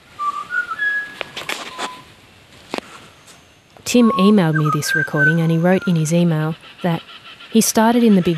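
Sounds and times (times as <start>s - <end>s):
faint outdoor noise: 0.0s - 8.3s
butcherbird singing in a big tree near Agnes Water Queensland: 0.2s - 2.1s, 4.0s - 8.3s
speech: 3.9s - 8.3s.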